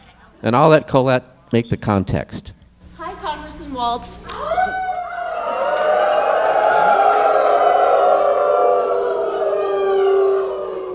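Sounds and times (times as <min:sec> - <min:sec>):
speech: 0:00.4 - 0:02.6, 0:03.8 - 0:04.8
crowd of a few hundred people howling into a phone call: 0:04.4 - 0:10.9.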